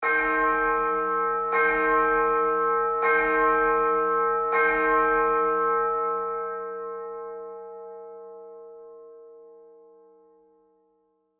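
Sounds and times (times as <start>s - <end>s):
church bells ringing: 0.0s - 10.1s.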